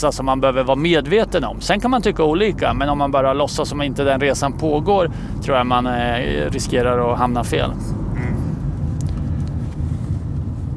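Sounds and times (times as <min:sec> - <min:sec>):
speech: 0:00.0 - 0:08.4
road and engine rumble inside a moving car: 0:00.0 - 0:10.7.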